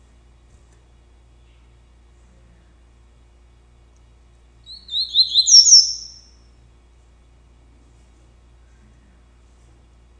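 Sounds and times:
double-collared seedeater singing warbled notes and whistles: 4.6 - 6.4.

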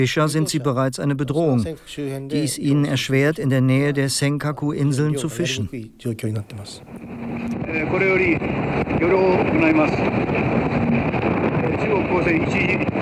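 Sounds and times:
speech: 0.0 - 11.1, 11.7 - 12.9
faint tonal whines: 6.4 - 12.9
Japanese motorboat running on the open sea: 6.7 - 12.9.

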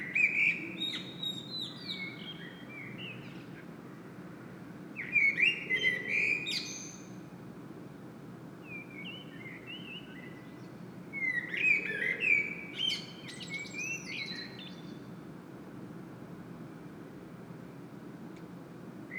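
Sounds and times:
common blackbird song in Saint-Gilles, Belgium: 0.0 - 3.6, 5.0 - 7.2, 8.7 - 15.1.

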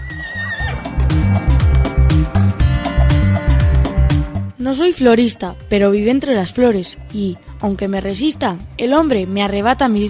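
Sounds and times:
horse neighing with a high wavering whinny: 0.0 - 1.0
loud dense rhythmic thumping: 0.7 - 4.5
speech: 4.6 - 10.0.

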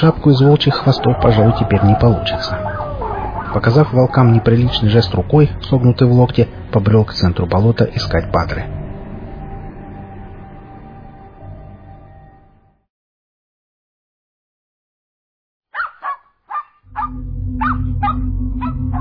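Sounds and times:
speech: 0.0 - 2.6, 3.6 - 8.8
dog barking excitedly in short high yips: 2.6 - 5.1, 15.7 - 18.8.

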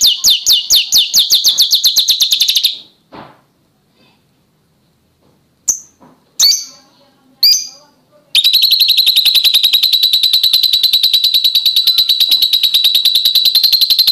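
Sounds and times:
Oriental magpie-robin song: 0.0 - 2.9, 5.7 - 14.1.

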